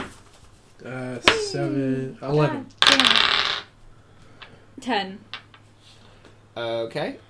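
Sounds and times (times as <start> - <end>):
speech: 0.8 - 3.4, 4.8 - 5.4, 6.6 - 7.2
dice rolling on a tabletop for initiative in a tabletop game: 2.7 - 3.7, 5.3 - 5.7.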